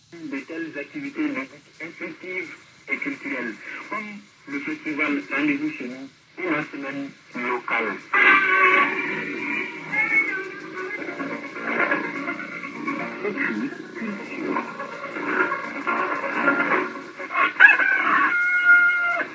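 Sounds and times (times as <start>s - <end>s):
speech: 0.1s - 9.4s
hens clucking in a farmyard: 7.4s - 19.3s
roosters crowing in a farmyard: 8.1s - 19.3s.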